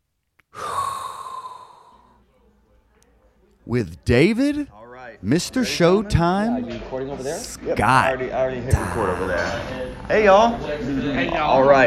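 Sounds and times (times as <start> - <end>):
long hot breath: 0.5 - 2.2
speech: 3.7 - 11.8.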